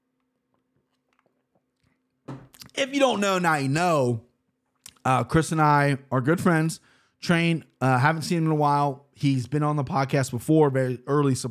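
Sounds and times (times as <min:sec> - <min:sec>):
person sipping a drink close to the mic: 0:00.7 - 0:02.7
speech: 0:02.8 - 0:04.3, 0:05.0 - 0:11.4.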